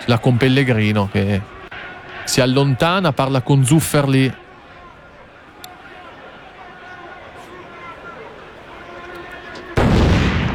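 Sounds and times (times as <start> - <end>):
speech: 0.0 - 1.6, 2.3 - 4.4
stadium crowd noise: 0.0 - 10.5
firecracker bang echoing across a football stadium: 9.8 - 10.5.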